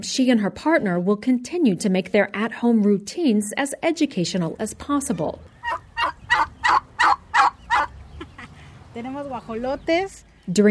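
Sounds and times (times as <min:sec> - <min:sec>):
speech: 0:00.0 - 0:06.2, 0:09.0 - 0:10.7
turkeys clucking: 0:05.1 - 0:08.8
turkeys gobbling: 0:05.4 - 0:08.6.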